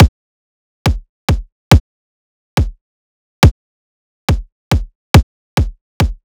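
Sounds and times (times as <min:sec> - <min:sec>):
riddim drum loop kick at 140 BPM: 0:00.9 - 0:01.8, 0:04.3 - 0:04.9, 0:05.6 - 0:06.2.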